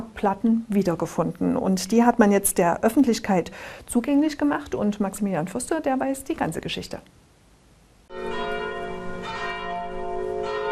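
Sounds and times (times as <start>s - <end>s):
speech: 0.2s - 7.2s
church bells ringing: 8.1s - 10.7s.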